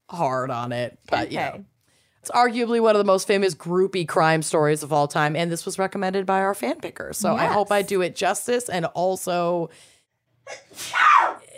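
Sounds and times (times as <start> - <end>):
speech: 0.1 - 9.9, 10.5 - 11.4
loud screaming sneeze with a drawn-out vocal burst: 10.5 - 11.5.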